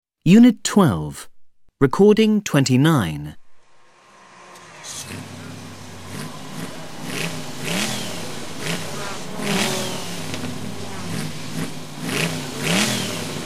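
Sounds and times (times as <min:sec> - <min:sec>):
speech: 0:00.2 - 0:03.4
steady mechanical rumble: 0:03.5 - 0:13.4
Formula One racing car engine revving: 0:03.6 - 0:13.4.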